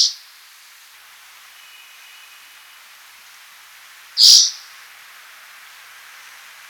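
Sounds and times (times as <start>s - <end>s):
faint steady hiss: 0.0s - 6.6s
speech: 4.2s - 4.6s
spotted forktail short sharp high-pitched screech call: 4.2s - 4.6s.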